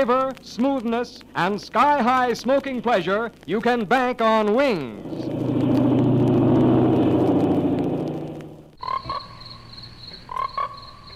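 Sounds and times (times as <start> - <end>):
speech: 0.0 - 5.6
faint noise: 0.0 - 11.1
low rumbling roar: 4.7 - 8.8
frogs croaking: 8.2 - 11.1.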